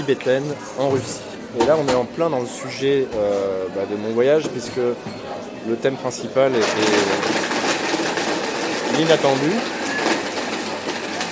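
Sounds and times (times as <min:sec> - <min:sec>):
speech: 0:00.0 - 0:07.4, 0:09.0 - 0:09.8
electric blender running: 0:06.6 - 0:11.3.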